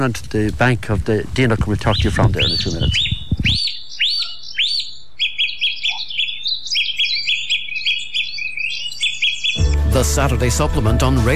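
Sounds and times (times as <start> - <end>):
speech: 0.0 - 3.6, 10.0 - 11.3
dawn chorus of birds singing: 1.4 - 10.2.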